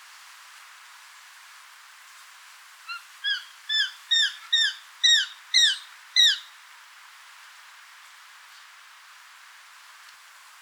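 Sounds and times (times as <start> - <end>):
Eurasian jay calling: 3.2 - 6.5.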